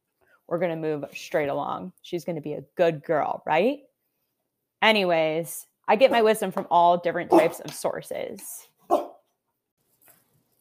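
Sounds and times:
speech: 0:00.5 - 0:03.9, 0:04.8 - 0:09.0
Weimaraner dog barking at a house in Seattle: 0:07.3 - 0:07.6, 0:08.8 - 0:09.3.

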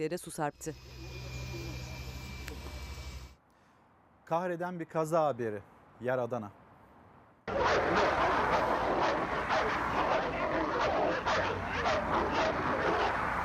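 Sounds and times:
speech: 0:00.0 - 0:01.1, 0:04.3 - 0:06.6
continuous roar: 0:00.0 - 0:03.4, 0:06.6 - 0:13.4
several street dogs barking in Adana, Turkey: 0:07.5 - 0:13.4.

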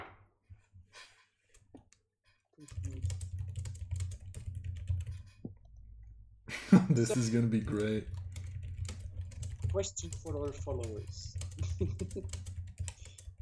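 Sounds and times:
typing on a computer keyboard: 0:02.6 - 0:05.4, 0:07.4 - 0:13.3
laughter: 0:06.5 - 0:07.9, 0:11.5 - 0:12.4
speech: 0:06.7 - 0:08.2, 0:09.8 - 0:12.5.

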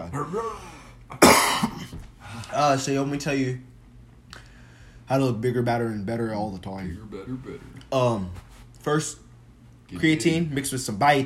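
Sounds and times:
speech: 0:00.0 - 0:00.8, 0:02.5 - 0:03.7, 0:05.1 - 0:09.2, 0:09.9 - 0:11.2
person coughing: 0:00.3 - 0:02.0.

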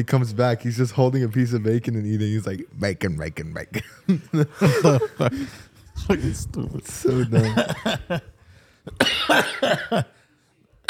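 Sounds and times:
speech: 0:00.0 - 0:10.2
laughter: 0:03.7 - 0:06.3, 0:06.9 - 0:08.4
person coughing: 0:08.9 - 0:10.1.

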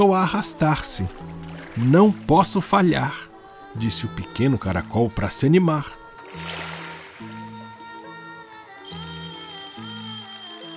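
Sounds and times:
speech: 0:00.0 - 0:06.6
school bell ringing a melodic chime: 0:08.8 - 0:10.7.

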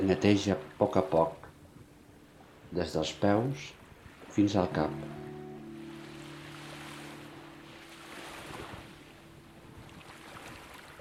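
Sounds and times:
faint breezy hiss: 0:00.0 - 0:10.9
ocean waves rolling in soft continuous swells: 0:00.0 - 0:10.9
speech: 0:00.1 - 0:01.4, 0:02.7 - 0:03.8, 0:04.4 - 0:05.3.

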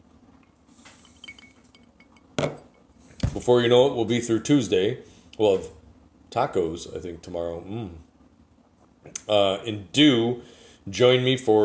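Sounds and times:
glass clinking in a toast: 0:01.0 - 0:03.0
speech: 0:03.4 - 0:08.1, 0:09.0 - 0:11.6.

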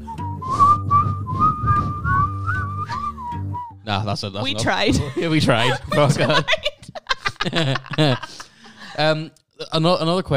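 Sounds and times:
person attempting to whistle: 0:00.0 - 0:03.8
airy puffs of breath between whistled notes: 0:00.5 - 0:03.2
speech: 0:03.9 - 0:06.7, 0:07.4 - 0:08.4, 0:09.0 - 0:10.3
laughter: 0:04.8 - 0:09.0.

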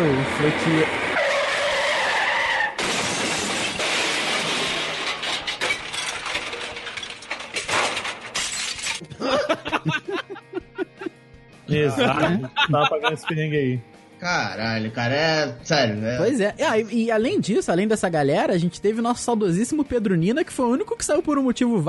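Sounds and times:
speech: 0:00.0 - 0:01.2, 0:11.8 - 0:21.8
truck tires screeching in a long skid: 0:00.0 - 0:05.6
scattered debris clattering: 0:02.8 - 0:09.0
truck crash and crunching impact: 0:02.8 - 0:09.0
laughter: 0:09.0 - 0:13.6.

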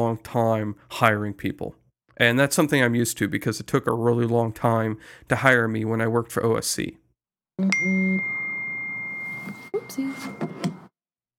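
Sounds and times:
speech: 0:00.0 - 0:07.0, 0:07.6 - 0:08.4, 0:09.9 - 0:10.6
phone notification chime: 0:07.6 - 0:10.9.

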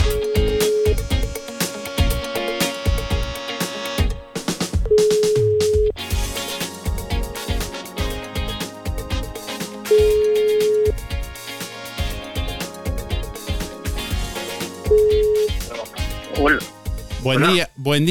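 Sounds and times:
loud rhythmic music with percussion: 0:00.0 - 0:18.0
phone ringback tone during an outgoing call: 0:04.9 - 0:05.9, 0:09.9 - 0:10.9
speech: 0:17.4 - 0:18.0.

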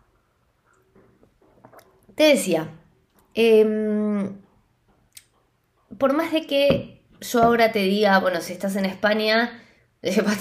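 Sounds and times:
gentle swallow: 0:00.6 - 0:02.2
person sipping hot tea: 0:00.6 - 0:02.2
speech: 0:02.2 - 0:02.8, 0:03.4 - 0:04.4, 0:06.0 - 0:10.4.

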